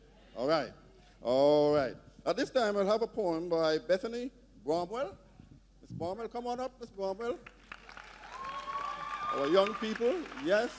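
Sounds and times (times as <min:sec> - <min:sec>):
speech: 0:00.4 - 0:05.2, 0:05.9 - 0:07.6, 0:09.3 - 0:10.7
church audience clapping: 0:07.4 - 0:10.7.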